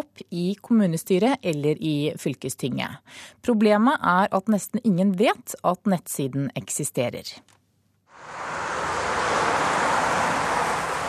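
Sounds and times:
speech: 0.3s - 7.6s
heavy road traffic roaring past: 8.1s - 11.0s.

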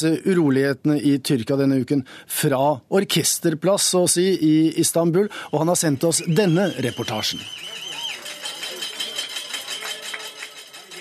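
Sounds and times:
speech: 0.0s - 7.8s
crowd of diners banging cutlery on glasses and plates: 7.7s - 10.9s.

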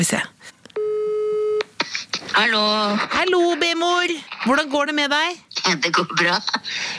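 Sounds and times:
speech: 0.0s - 0.3s, 2.4s - 6.9s
electronic telephone ringing tone while placing a phone call: 0.8s - 1.6s.

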